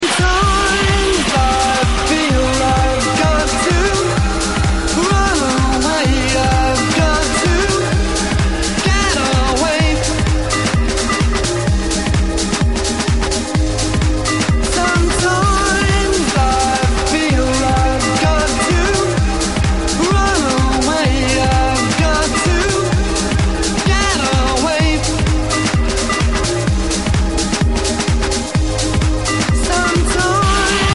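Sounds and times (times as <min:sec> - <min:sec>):
warped bass: 0:00.0 - 0:30.9.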